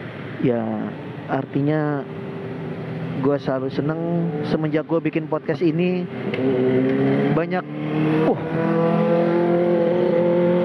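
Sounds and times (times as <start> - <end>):
motorcycle engine roaring at high rev: 0.0 - 10.6
speech: 0.4 - 2.2, 3.2 - 9.2.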